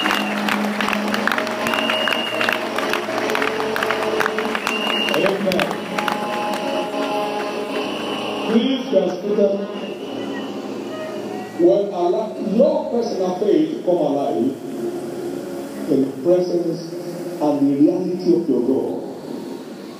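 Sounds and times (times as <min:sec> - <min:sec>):
cheers: 0:00.0 - 0:07.1
audience clapping as a clap offering: 0:00.0 - 0:10.2
sustained musical tones: 0:00.0 - 0:19.9
scattered voices: 0:05.2 - 0:19.9
speech: 0:09.0 - 0:09.8, 0:11.6 - 0:14.7, 0:15.9 - 0:19.0.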